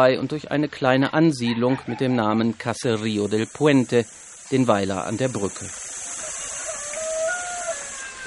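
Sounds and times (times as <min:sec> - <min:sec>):
speech: 0:00.0 - 0:05.9
chickens clucking while pecking in riverbank sand: 0:01.3 - 0:03.3, 0:05.2 - 0:08.2.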